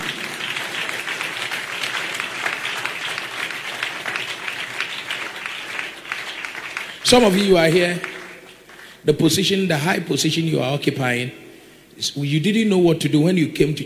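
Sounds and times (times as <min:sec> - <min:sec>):
large crowd clapping: 0:00.0 - 0:09.1
speech: 0:07.1 - 0:08.1, 0:09.0 - 0:11.4, 0:12.0 - 0:13.8.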